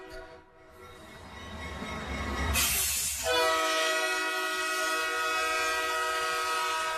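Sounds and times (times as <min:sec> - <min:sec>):
train rumbling past at Nacional station: 0:00.0 - 0:06.9
train horn blast: 0:02.6 - 0:06.9.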